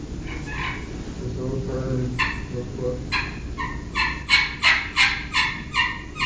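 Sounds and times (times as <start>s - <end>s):
soft putts and purrs on a slate turkey call: 0.2s - 0.9s, 2.2s - 6.2s.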